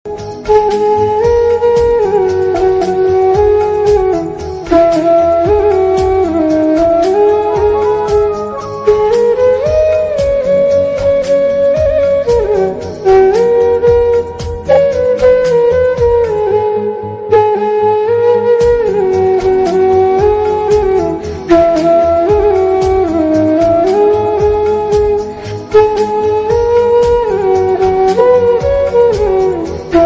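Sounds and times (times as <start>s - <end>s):
flute instrumental: 0.1s - 30.0s.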